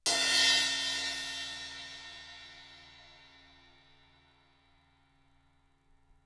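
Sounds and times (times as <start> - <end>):
custom 15-inch crash cymbal: 0.0 - 4.9.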